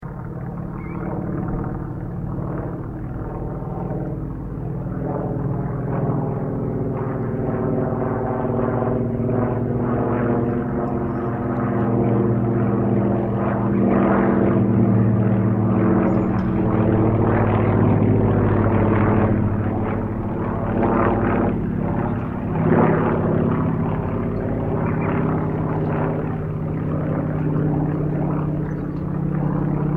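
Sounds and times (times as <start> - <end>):
Yakovlev Yak-52 aircraft flying: 0.0 - 29.9.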